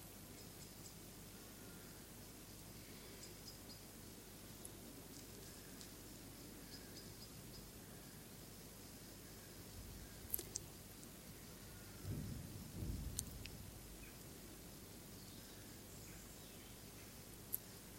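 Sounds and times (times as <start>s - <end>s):
steady hiss: 0.0s - 17.9s
faint distant thunder rumbling: 11.9s - 14.0s.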